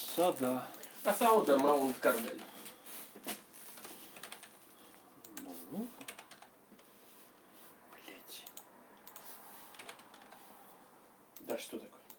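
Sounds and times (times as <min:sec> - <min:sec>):
speech: 0:00.2 - 0:02.5
typing on a computer keyboard: 0:03.8 - 0:04.6, 0:05.3 - 0:06.5, 0:08.5 - 0:10.4.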